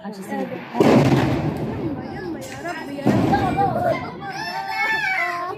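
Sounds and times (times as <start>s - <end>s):
bombs exploding in Gaza: 0.2s - 4.2s
young children crying out in Gaza: 3.5s - 5.5s.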